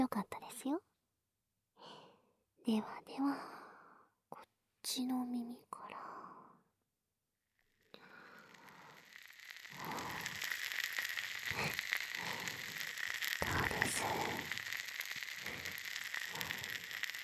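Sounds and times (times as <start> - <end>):
speech: 0.0 - 0.9, 2.6 - 3.6, 4.4 - 6.1
fizzing and crackling carbonated foam: 7.9 - 17.2
soft rhythmic rubbing: 8.4 - 17.2.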